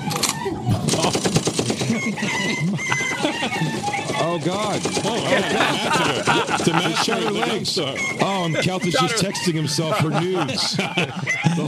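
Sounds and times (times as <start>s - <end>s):
laughter: 0.5s - 11.6s
rapid burst of gunshots like automatic fire: 0.7s - 2.1s
speech: 4.3s - 11.6s.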